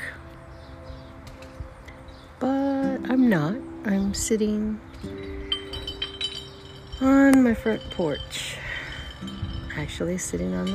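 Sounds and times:
speech: 2.4s - 5.1s, 7.0s - 8.6s, 9.2s - 10.7s
glass bottles clinking in recycle bins: 5.1s - 10.7s.

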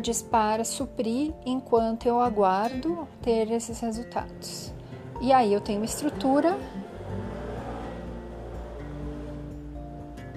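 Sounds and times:
speech: 0.0s - 6.8s
motorcycle engine revving as it passes by: 4.2s - 10.3s.

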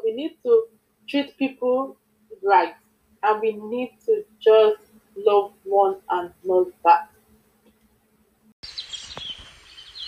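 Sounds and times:
speech: 0.2s - 7.1s
several birds chirping outdoors: 8.6s - 10.0s.

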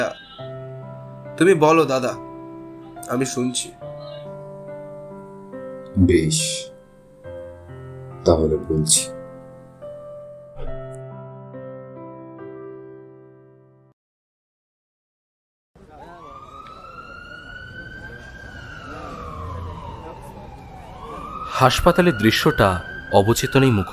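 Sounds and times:
speech: 0.0s - 0.2s, 1.4s - 2.3s, 3.0s - 3.9s, 6.0s - 6.7s, 8.2s - 9.2s, 21.6s - 23.9s
ambulance siren wailing in a hospital scene: 0.0s - 1.2s, 15.8s - 23.9s.

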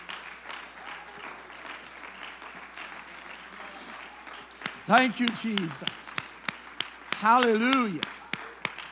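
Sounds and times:
audience clapping in praise: 0.0s - 8.8s
speech: 4.9s - 6.0s, 7.2s - 8.2s.

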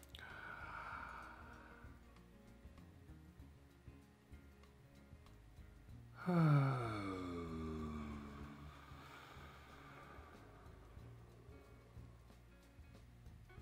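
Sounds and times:
deep breath drawn in and exhaled in a group breathing exercise: 0.2s - 2.1s, 6.2s - 11.8s.

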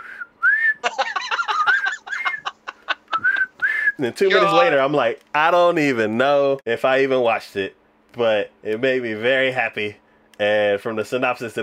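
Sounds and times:
bright whistled tune from a trailer: 0.0s - 0.8s, 3.2s - 4.0s
laughter: 0.8s - 4.8s
speech: 4.0s - 11.6s.

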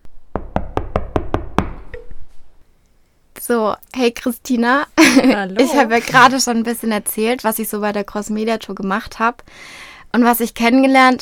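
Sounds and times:
knocking on a door: 0.3s - 2.0s
speech: 3.5s - 11.2s
laughter: 5.0s - 6.4s.

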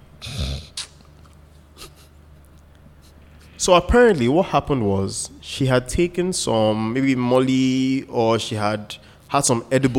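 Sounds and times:
voice imitating a woman's asthma-attack gasping: 0.2s - 0.9s
speech: 3.6s - 9.9s.

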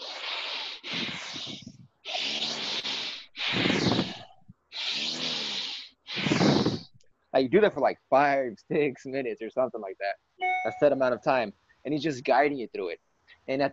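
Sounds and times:
fast deep rhythmic breathing during a guided meditation: 0.0s - 7.0s
speech: 7.4s - 13.7s.

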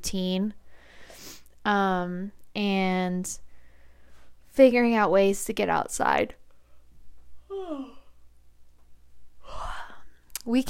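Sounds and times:
speech: 0.0s - 0.6s, 1.6s - 3.5s, 4.6s - 6.4s, 7.7s - 7.9s, 10.4s - 10.6s
person yawning aloud: 7.4s - 8.2s, 9.4s - 10.1s.

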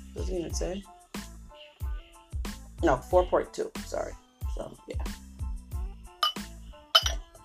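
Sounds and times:
speech: 0.1s - 0.9s, 2.8s - 5.2s
glass clinking: 6.2s - 7.3s.

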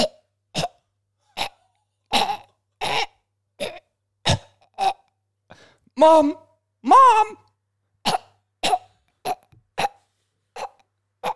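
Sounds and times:
person choking and coughing on a beechnut stuck in the throat: 0.0s - 5.1s, 8.0s - 10.0s, 10.6s - 11.3s
speech: 6.0s - 7.4s.

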